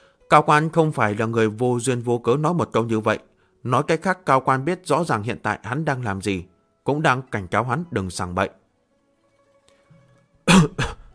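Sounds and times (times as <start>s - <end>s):
speech: 0.3s - 8.6s, 10.5s - 10.9s
woman giving dry harsh breathy coughs: 10.5s - 11.1s.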